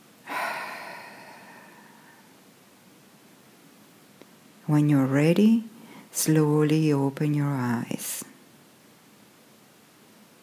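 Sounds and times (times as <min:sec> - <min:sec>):
deep breath exhaled through the mouth: 0:00.2 - 0:02.3
speech: 0:04.7 - 0:08.3.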